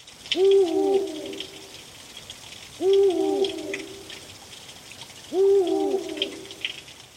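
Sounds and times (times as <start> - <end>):
speech: 0.3 - 0.8
eagle owl hooting: 0.4 - 1.6, 2.8 - 4.1, 5.3 - 6.6.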